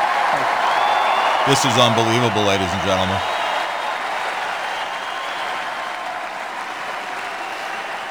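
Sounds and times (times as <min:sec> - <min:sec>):
large audience applauding: 0:00.0 - 0:08.0
laughter: 0:00.3 - 0:03.3
speech: 0:01.5 - 0:03.3.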